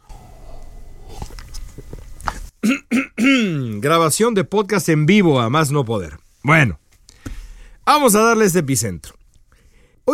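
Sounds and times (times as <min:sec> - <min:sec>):
person sipping hot tea: 0:00.0 - 0:02.5
speech: 0:03.8 - 0:06.8, 0:07.9 - 0:09.2.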